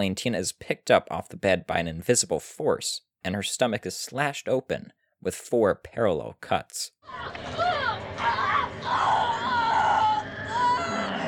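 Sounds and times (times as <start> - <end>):
speech: 0.0 - 9.3
woman screaming and wailing in distress while attacked: 7.0 - 11.2.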